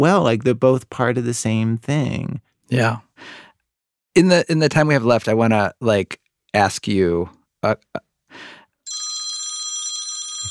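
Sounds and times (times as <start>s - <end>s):
speech: 0.0s - 3.4s, 4.2s - 8.6s
computer incoming-call ringtone: 8.9s - 10.4s.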